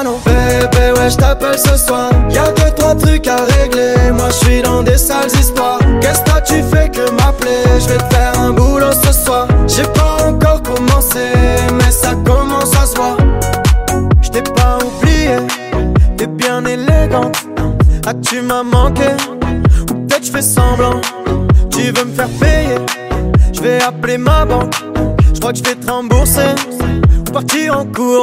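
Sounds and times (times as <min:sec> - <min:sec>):
piano: 0:00.1 - 0:28.1.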